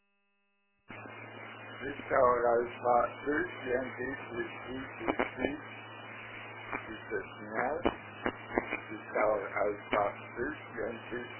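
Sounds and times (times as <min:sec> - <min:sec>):
low electrical hum: 0:00.9 - 0:11.3
speech: 0:01.8 - 0:05.9, 0:06.7 - 0:11.3.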